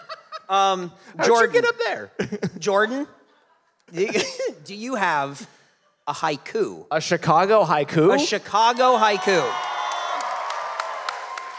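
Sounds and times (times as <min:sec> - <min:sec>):
laughter: 0:00.0 - 0:01.6, 0:02.2 - 0:04.8
speech: 0:00.5 - 0:03.2, 0:03.9 - 0:09.7
crowd clapping and cheering: 0:08.7 - 0:11.5.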